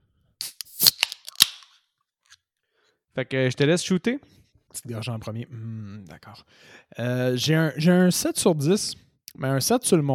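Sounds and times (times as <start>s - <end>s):
beer bottle cap opening with clicks, pops and hiss: 0.4s - 1.8s
speech: 3.2s - 10.1s.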